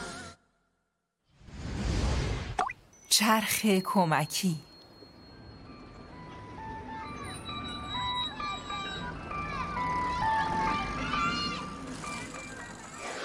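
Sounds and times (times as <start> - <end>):
noise: 0.0 - 10.7
ice cream truck jingle: 3.0 - 13.1
speech: 3.1 - 4.7.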